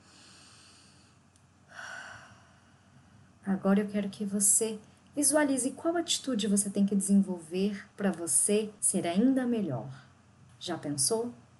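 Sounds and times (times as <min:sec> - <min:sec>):
deep breath inhale during a guided relaxation exercise: 0:00.0 - 0:03.4
speech: 0:03.5 - 0:10.0, 0:10.6 - 0:11.4.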